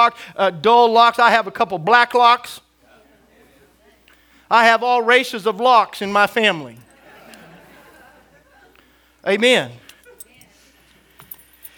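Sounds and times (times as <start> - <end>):
speech: 0.0 - 2.6, 4.5 - 6.8, 9.2 - 9.8
soft hum: 0.0 - 11.7
laughter: 6.8 - 9.0
keys jangling on a key ring: 9.8 - 11.7.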